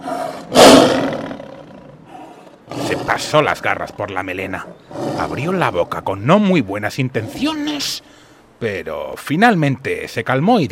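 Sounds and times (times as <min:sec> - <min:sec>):
lion roaring angrily: 0:00.0 - 0:06.3, 0:07.2 - 0:07.9
speech: 0:02.9 - 0:10.7.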